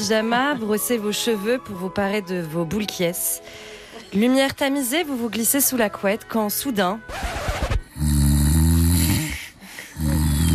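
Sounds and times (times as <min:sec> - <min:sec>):
speech: 0:00.0 - 0:07.5
person snoring in bed: 0:07.9 - 0:10.5.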